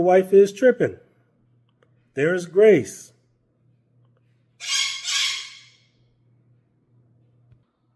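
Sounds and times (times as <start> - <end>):
speech: 0.0 - 1.0, 2.2 - 3.1
low steady hum: 0.0 - 7.9
pet bird squawking: 4.6 - 5.8.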